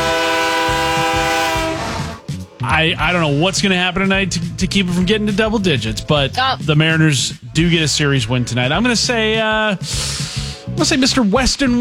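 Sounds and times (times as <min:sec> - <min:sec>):
train horn blaring: 0:00.0 - 0:02.3
rolling rail cars rumbling: 0:00.0 - 0:10.9
speech: 0:02.8 - 0:11.7.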